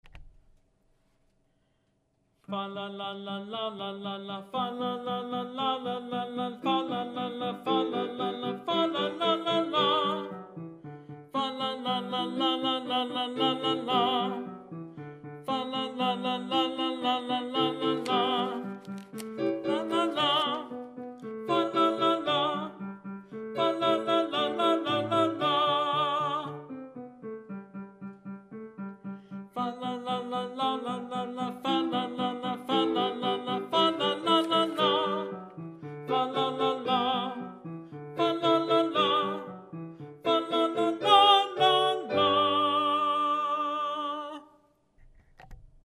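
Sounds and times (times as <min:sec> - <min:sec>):
tenor singing fa la la: 0:02.5 - 0:10.5, 0:11.4 - 0:14.6, 0:15.4 - 0:22.9, 0:23.5 - 0:26.8, 0:29.6 - 0:39.6, 0:40.2 - 0:44.6.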